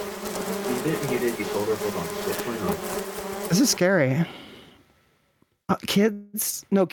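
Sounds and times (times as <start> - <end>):
dense swarm of bees buzzing: 0.0 - 4.2
speech: 0.8 - 4.5, 5.7 - 6.9.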